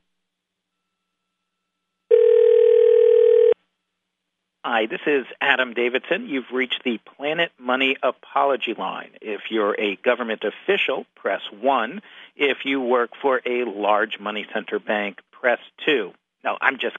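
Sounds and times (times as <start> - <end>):
steady telephone line tone: 2.1 - 3.6
speech: 4.8 - 16.9.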